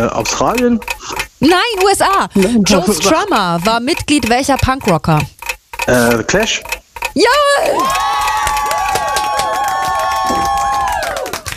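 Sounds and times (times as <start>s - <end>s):
speech: 0.0s - 8.1s
crowd cheering with shrill whoops: 7.3s - 11.5s
crowd clapping: 7.8s - 11.5s.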